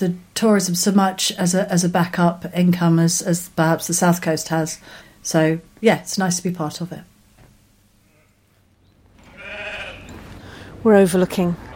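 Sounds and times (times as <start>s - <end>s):
speech: 0.0s - 7.1s, 10.8s - 11.7s
low hum: 0.0s - 11.7s
sheep bleating in a lambing shed: 8.0s - 8.6s, 9.2s - 10.1s.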